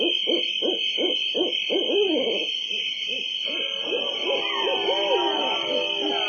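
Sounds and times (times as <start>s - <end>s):
owl giving rapid runs of short low hoots: 0.0s - 6.2s
wavering drawn-out tones: 3.4s - 6.2s.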